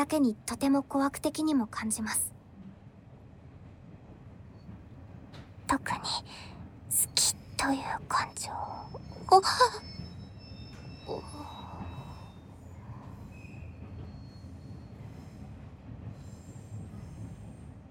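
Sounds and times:
speech: 0.0 - 2.3, 5.7 - 10.0
train rumbling as it decelerates: 0.0 - 17.8
train wheels squealing: 4.4 - 17.8.

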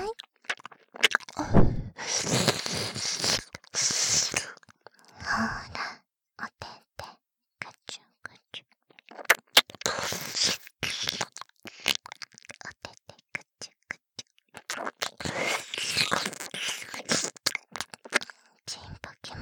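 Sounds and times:
wet licking and mouth sounds on an ear: 0.1 - 1.4, 2.0 - 5.1, 8.9 - 13.1, 13.7 - 18.3.

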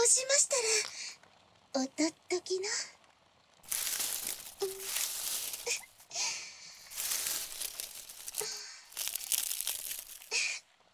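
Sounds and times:
speech: 0.2 - 1.0, 1.7 - 2.9
aluminum foil being crumpled and crushed: 3.7 - 10.5.

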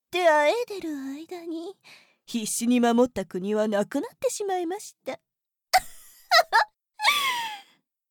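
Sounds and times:
speech: 0.1 - 5.3
person crying with sobbing gasps and a wavering wail: 6.4 - 7.6.

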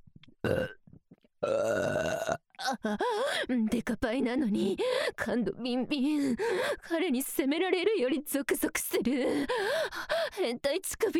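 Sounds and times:
burps: 0.4 - 2.8
speech: 2.8 - 11.1
faint breathy sounds: 3.0 - 3.5, 4.8 - 5.2, 6.2 - 6.9, 9.2 - 10.5.

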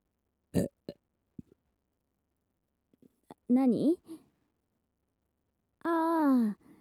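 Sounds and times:
person burping: 0.6 - 1.0
speech: 3.5 - 4.2.

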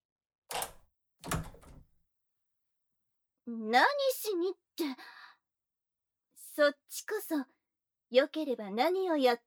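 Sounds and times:
door creaking open: 0.5 - 1.8
speech: 3.5 - 5.2, 6.6 - 9.4.

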